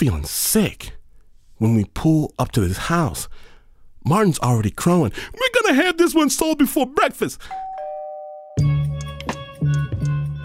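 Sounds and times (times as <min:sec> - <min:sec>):
speech: 0:00.0 - 0:01.0, 0:01.6 - 0:07.7
doorbell chiming: 0:07.5 - 0:08.8.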